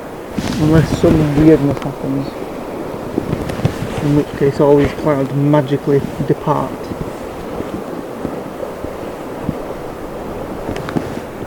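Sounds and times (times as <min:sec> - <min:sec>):
faint crackling bursts: 0:00.0 - 0:11.4
ocean surf washing: 0:00.0 - 0:11.4
wind rumble: 0:00.0 - 0:11.4
speech: 0:00.6 - 0:02.4, 0:04.0 - 0:07.0.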